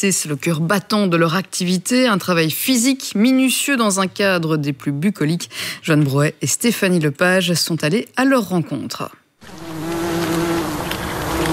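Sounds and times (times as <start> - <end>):
speech: 0.0 - 9.6
insect buzzing: 9.4 - 11.5.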